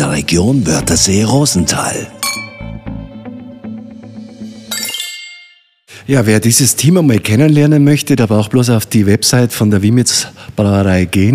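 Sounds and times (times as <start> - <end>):
speech: 0.2 - 2.4, 6.1 - 11.3
sustained tonal chiming: 0.7 - 5.9
glasses clinking in a toast: 2.2 - 2.8, 4.7 - 5.6.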